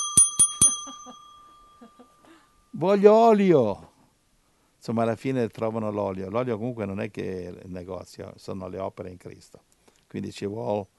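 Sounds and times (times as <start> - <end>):
doorbell ringing with a bright metallic ding: 0.0 - 2.2
speech: 2.8 - 3.9, 4.8 - 10.9.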